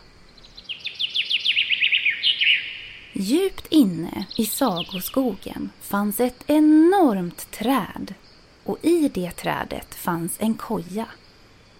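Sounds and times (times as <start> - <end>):
bird singing a rising run of chirps in a forest: 0.3 - 8.1
speech: 3.2 - 11.2.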